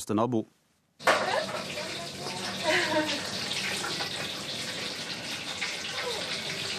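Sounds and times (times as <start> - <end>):
speech: 0.0 - 0.6
fish deep-frying in pots of hot fat at a small hotel and eatery: 1.0 - 6.7.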